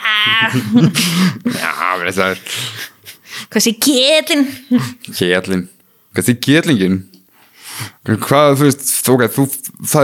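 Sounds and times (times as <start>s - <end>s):
person making throaty guttural noise with back of tongue: 0.0s - 2.4s
speech: 0.2s - 7.1s, 7.8s - 10.0s.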